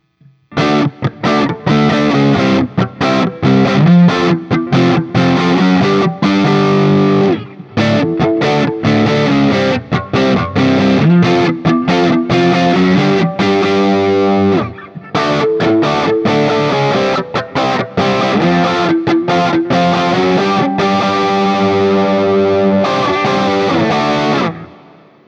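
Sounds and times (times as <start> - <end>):
Guild Starfire I SC electric guitar through JCM800 amplifier: 0.0 - 25.2.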